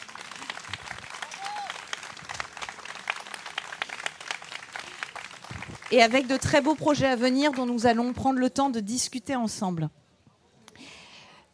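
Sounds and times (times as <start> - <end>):
audience applause: 0.0 - 7.9
speech: 5.9 - 10.0.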